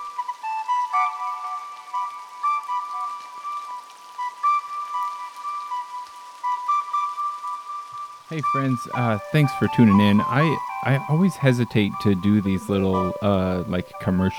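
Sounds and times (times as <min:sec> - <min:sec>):
steady rain pattering across a surface: 0:00.0 - 0:14.3
sustained wavering whistle-like tones: 0:00.0 - 0:14.3
speech: 0:08.3 - 0:14.3.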